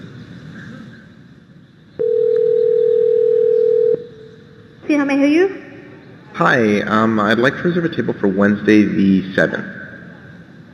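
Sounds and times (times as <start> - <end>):
telephone ringing on a call to a small restaurant: 2.0 - 4.1
speech: 4.9 - 5.6, 6.4 - 9.8.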